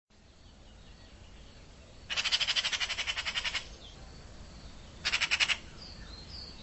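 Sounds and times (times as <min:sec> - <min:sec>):
bird buzzy rattling calls: 0:02.1 - 0:03.9, 0:05.0 - 0:05.9.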